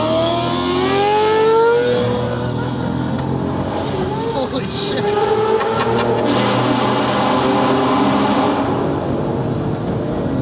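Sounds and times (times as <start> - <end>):
sport motorcycle engine revving hard: 0.0 - 9.6
laughter: 4.4 - 6.4.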